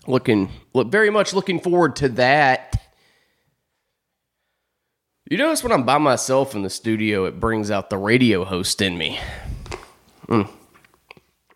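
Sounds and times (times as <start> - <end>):
speech: 0.1 - 2.8, 5.3 - 9.6, 10.3 - 10.6
short voiced sigh or swallow: 9.1 - 10.8
sipping an iced McCafe coffee drink from McDonald's: 9.4 - 11.2
faint mouth clicks: 9.4 - 11.5.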